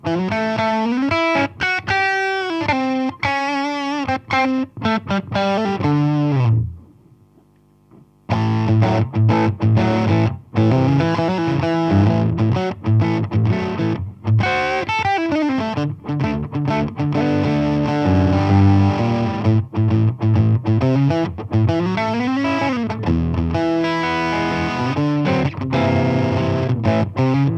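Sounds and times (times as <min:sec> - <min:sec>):
two amplifiers in stereo with clean and dirty tones: 0:00.0 - 0:27.5.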